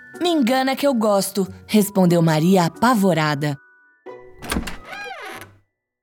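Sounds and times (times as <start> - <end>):
speech: 0.2 - 3.6
door lock clunking as door is unlocked: 4.3 - 5.6.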